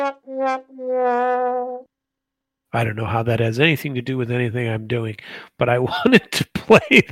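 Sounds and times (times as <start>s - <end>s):
sad trombone sound effect: 0.0s - 1.9s
speech: 2.7s - 7.0s.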